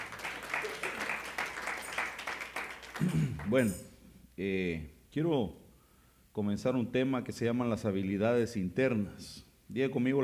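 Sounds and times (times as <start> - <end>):
church audience clapping during a service: 0.0 - 3.7
speech: 3.0 - 5.6, 6.4 - 10.2.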